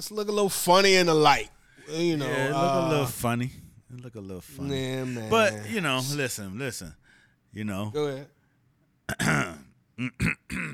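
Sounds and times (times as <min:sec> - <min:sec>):
speech: 0:00.0 - 0:08.4, 0:09.1 - 0:10.7
throat clearing: 0:09.1 - 0:10.7.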